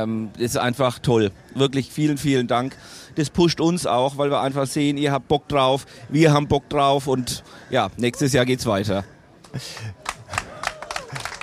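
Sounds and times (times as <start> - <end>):
speech: 0.0 - 10.1
scattered quiet clapping from a small audience: 9.7 - 11.4
voices and cheers: 10.2 - 11.4.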